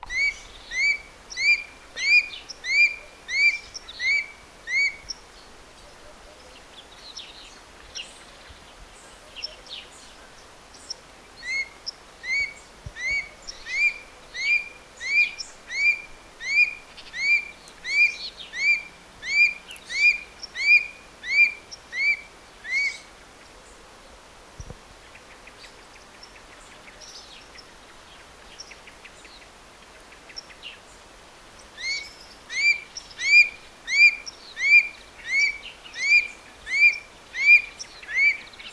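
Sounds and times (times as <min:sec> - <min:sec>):
booted eagle calling: 0:00.0 - 0:05.2, 0:11.4 - 0:23.1, 0:31.8 - 0:38.7.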